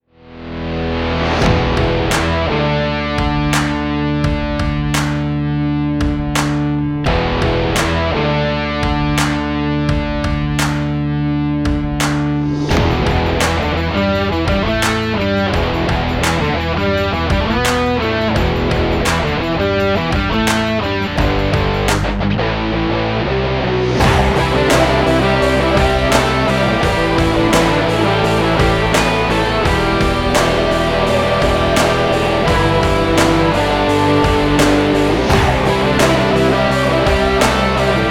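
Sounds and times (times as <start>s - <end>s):
stylish stomp sport rock music: 0.4s - 38.1s.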